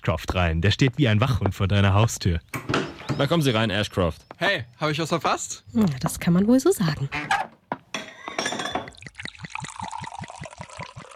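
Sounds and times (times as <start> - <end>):
speech: 0.0 - 7.5
glasses clinking together in a toast: 7.8 - 9.9
rhythmic glugging of liquid being poured: 8.0 - 11.1.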